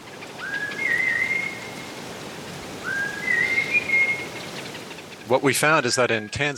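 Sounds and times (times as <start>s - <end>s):
soft rain-like hiss: 0.4s - 6.5s
Hadza honey-hunting whistle call to honeyguide birds played through a speaker: 2.9s - 4.2s
speech: 5.3s - 6.5s.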